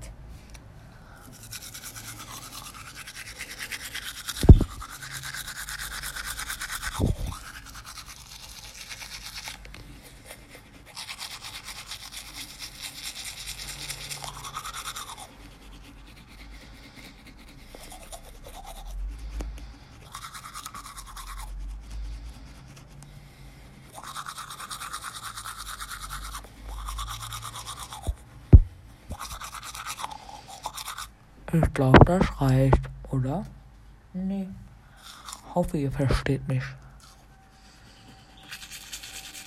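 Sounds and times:
toothbrush scrubbing with bristle strokes: 1.2 - 32.8, 35.0 - 37.2, 38.4 - 39.4
soft thuds: 28.5 - 28.8
speech: 31.8 - 32.8, 35.6 - 36.8.

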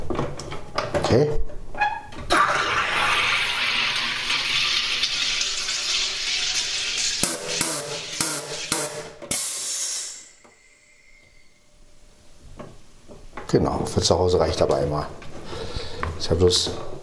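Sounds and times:
speech: 1.1 - 1.5, 13.5 - 15.2, 16.3 - 16.9
water running in a steady rushing hiss: 2.3 - 9.3
sharp bursts of hissing: 6.2 - 11.5.

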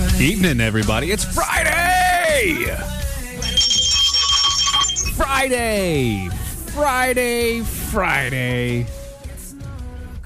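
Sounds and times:
speech: 0.2 - 3.0, 5.2 - 9.0
bell ringing: 3.4 - 6.3.

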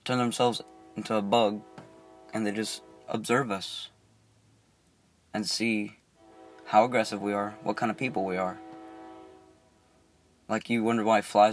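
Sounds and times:
speech: 0.0 - 1.7, 2.3 - 3.9, 5.3 - 6.0, 6.7 - 8.6, 10.5 - 11.5
train horn blast: 0.0 - 4.0, 6.2 - 10.5.

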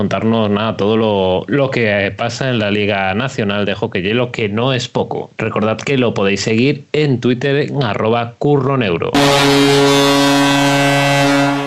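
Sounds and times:
speech: 0.0 - 10.0
horn blast: 9.2 - 11.6.

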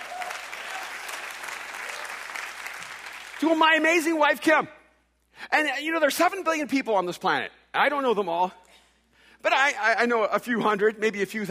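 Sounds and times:
audience applause for a speaker: 0.0 - 3.4
speech: 3.4 - 4.8, 5.4 - 8.6, 9.4 - 11.5.

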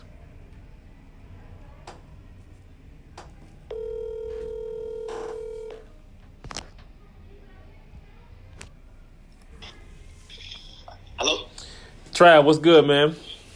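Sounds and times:
electronic telephone ring tone of a call being placed: 3.7 - 5.9
speech: 12.2 - 13.3.

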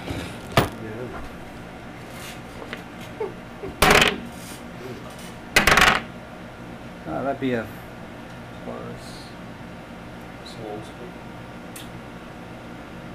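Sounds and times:
dice clattering across a hard tabletop: 5.6 - 6.0
speech: 7.2 - 7.8.

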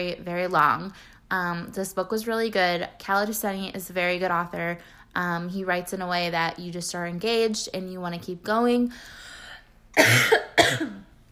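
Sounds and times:
speech: 0.0 - 9.3, 10.0 - 11.1
faint hum of room noise: 0.0 - 11.3
harsh coughs: 10.0 - 11.1.

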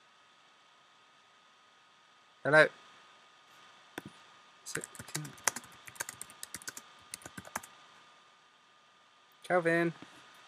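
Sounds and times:
speech: 2.4 - 2.8, 4.7 - 5.4, 9.5 - 10.1
typing on a computer keyboard: 4.7 - 7.7.

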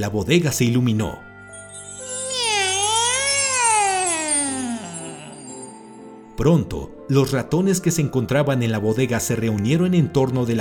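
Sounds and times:
speech: 0.0 - 1.3, 6.4 - 10.6
cat giving a long loud strange meow: 2.0 - 5.6.

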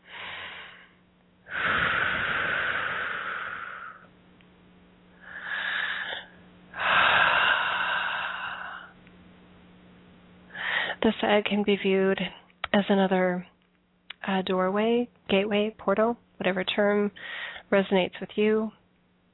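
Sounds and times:
deep breathing: 0.0 - 4.1, 5.1 - 9.0, 10.5 - 11.0
speech: 11.0 - 13.5, 14.2 - 18.8.

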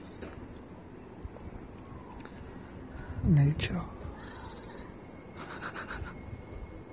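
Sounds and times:
harsh caw-like bird calls outdoors: 0.0 - 0.4, 4.1 - 5.0
steady low outdoor rumble: 0.0 - 6.9
speech: 3.2 - 4.0.

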